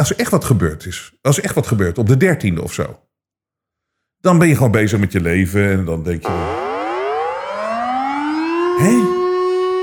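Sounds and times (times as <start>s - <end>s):
speech: 0.0s - 3.1s, 4.2s - 6.6s
air raid siren wailing: 6.2s - 9.8s.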